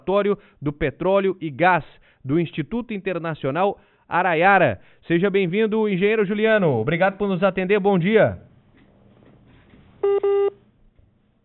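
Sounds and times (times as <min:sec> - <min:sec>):
speech: 0:00.0 - 0:08.5
low-pitched telephone tone beeps while a dropped call is redialed: 0:10.0 - 0:10.6.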